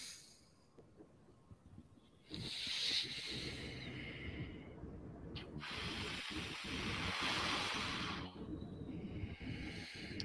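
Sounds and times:
slow deep inhaling and exhaling breaths: 0:02.2 - 0:10.2.

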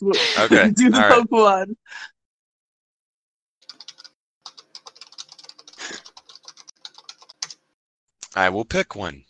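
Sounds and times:
speech: 0:00.0 - 0:02.1, 0:08.4 - 0:09.2
rapid clattering computer keyboard typing: 0:03.6 - 0:07.6.

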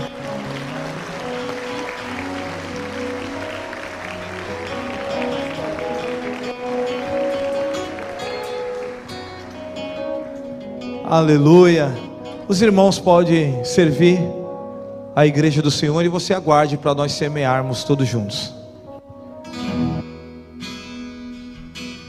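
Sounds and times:
audience applauding: 0:00.0 - 0:10.6
sustained musical backdrop of held tones: 0:00.0 - 0:22.0
speech: 0:11.1 - 0:14.4, 0:15.2 - 0:18.6.

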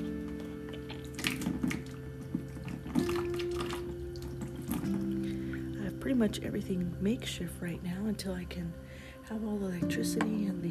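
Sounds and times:
soft knocks and splashes: 0:00.0 - 0:05.8
tap water running as a teaspoon is rinsed: 0:00.0 - 0:06.2
speech: 0:06.1 - 0:10.6.

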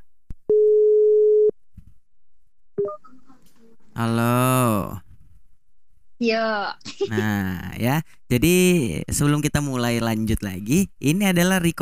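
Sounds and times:
electronic phone ringback tone: 0:00.5 - 0:01.5
speech: 0:04.0 - 0:05.0, 0:06.2 - 0:11.7
laughter: 0:06.9 - 0:07.4.

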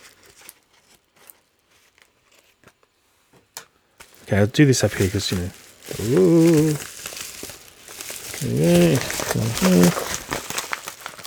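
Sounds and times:
parcel packaging being cut and torn open: 0:04.0 - 0:11.2
speech: 0:04.3 - 0:06.9, 0:08.4 - 0:10.2.

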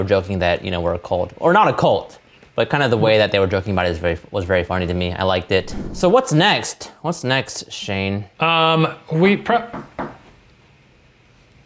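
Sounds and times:
speech: 0:00.0 - 0:10.0
dull knock at a door: 0:09.7 - 0:10.3.

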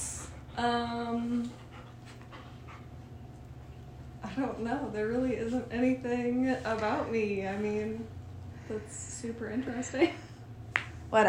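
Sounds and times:
dog panting: 0:00.1 - 0:03.3
speech: 0:00.6 - 0:01.7, 0:04.2 - 0:10.2.

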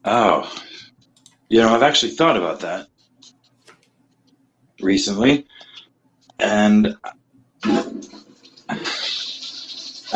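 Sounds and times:
speech: 0:00.0 - 0:00.7, 0:01.5 - 0:02.9, 0:04.8 - 0:05.5, 0:06.4 - 0:07.8
toilet flushing: 0:07.6 - 0:10.1.

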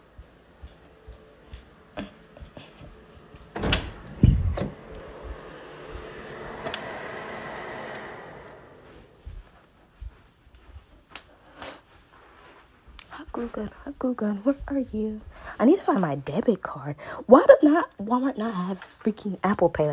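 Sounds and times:
door clunking open to let a dog inside: 0:03.0 - 0:08.1
speech: 0:13.4 - 0:19.9.

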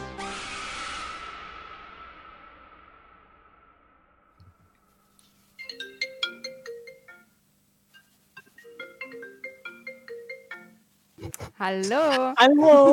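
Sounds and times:
whoosh of noise: 0:00.2 - 0:04.3
phone ringtone playing a bright electronic melody of chiming notes: 0:05.6 - 0:07.4, 0:08.4 - 0:10.9
speech: 0:11.6 - 0:12.9.

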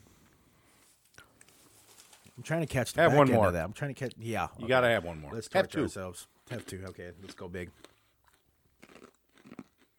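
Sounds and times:
speech: 0:02.4 - 0:07.9
chewing hard wasabi-coated nuts: 0:06.4 - 0:09.9.

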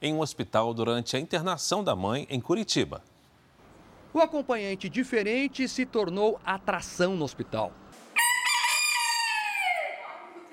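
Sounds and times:
speech: 0:00.0 - 0:03.1, 0:04.1 - 0:08.3
rooster crowing: 0:08.2 - 0:10.3.

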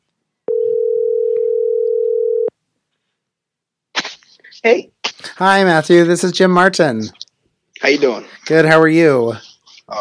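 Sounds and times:
telephone dial tone as a call is dialed: 0:00.5 - 0:02.5
speech: 0:04.6 - 0:07.2, 0:07.8 - 0:10.0.

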